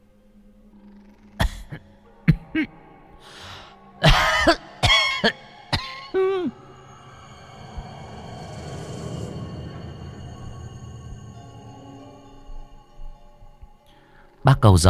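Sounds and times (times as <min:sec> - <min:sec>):
low droning background: 0:00.0 - 0:14.6
elderly woman with long-standing asthma coughing harshly: 0:01.4 - 0:02.7, 0:04.0 - 0:06.6.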